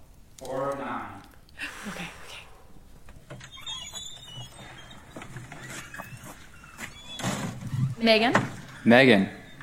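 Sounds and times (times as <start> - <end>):
dining lodge screen door creaking open on a squeaky hinge: 3.0 - 9.6
speech: 8.0 - 9.4.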